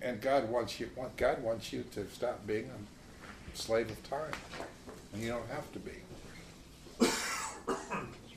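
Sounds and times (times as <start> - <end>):
speech: 0.1 - 6.2
person coughing: 7.0 - 8.2
throat clearing: 7.0 - 8.2.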